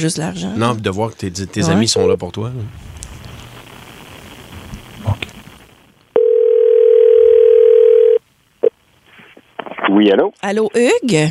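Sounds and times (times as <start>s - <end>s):
speech: 0.0s - 2.9s, 10.0s - 11.2s
telephone dial tone while dialing a call: 6.2s - 8.2s.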